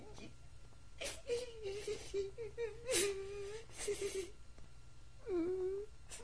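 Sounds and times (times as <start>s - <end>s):
boy crying and whimpering: 1.0s - 4.3s, 5.2s - 5.9s.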